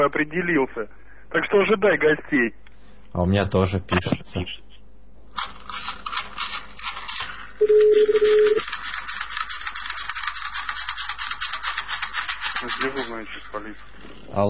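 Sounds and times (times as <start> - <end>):
speech: 0.0 - 4.7, 7.6 - 8.8, 12.6 - 14.4
crackly hissing telephone line noise: 5.3 - 14.4
loud electronic three-tone telephone signal: 7.6 - 8.6.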